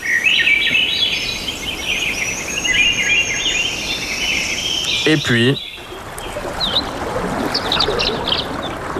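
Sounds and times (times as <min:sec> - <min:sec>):
birds chirping and twittering: 0:00.0 - 0:08.8
gently flowing river: 0:00.0 - 0:08.9
speech: 0:05.1 - 0:05.7.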